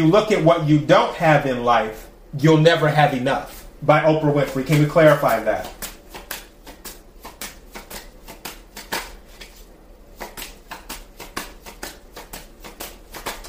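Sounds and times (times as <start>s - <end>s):
speech: 0.0s - 5.8s
deck of cards being shuffled and handled: 4.4s - 13.4s.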